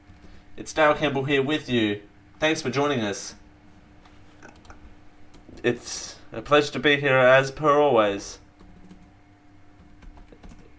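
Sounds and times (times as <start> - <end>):
speech: 0.6 - 3.4, 5.6 - 8.4
typing on a computer keyboard: 8.6 - 9.1, 9.8 - 10.7.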